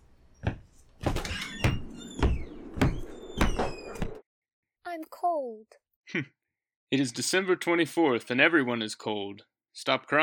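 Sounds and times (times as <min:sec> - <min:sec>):
door opening with clunks and rattles: 0:01.0 - 0:04.2
speech: 0:05.4 - 0:10.2.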